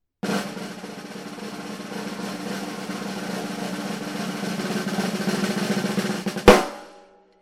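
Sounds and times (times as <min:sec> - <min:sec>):
drumline drum roll on skintone drumhead: 0:00.2 - 0:07.0.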